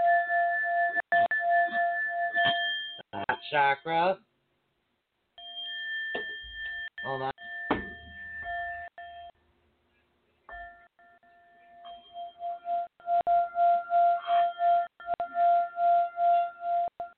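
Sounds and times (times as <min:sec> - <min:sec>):
struck singing bowl ringing: 0:00.0 - 0:03.1, 0:05.4 - 0:09.4, 0:10.5 - 0:17.1
speech: 0:03.5 - 0:04.3, 0:07.0 - 0:07.3
handling knocks: 0:07.7 - 0:08.3.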